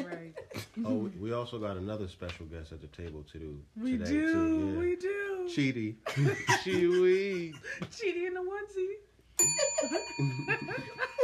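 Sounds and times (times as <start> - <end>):
speech: 0.8 - 9.0, 10.0 - 11.0
people laughing and chuckling: 6.1 - 8.0, 9.7 - 11.2
bright bell ringing: 9.4 - 11.2.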